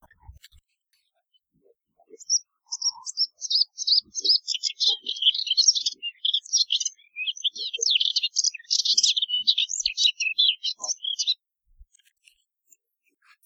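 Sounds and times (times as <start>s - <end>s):
melodious warbler Hippolais polyglotta trilling and warbling: 2.2s - 11.4s.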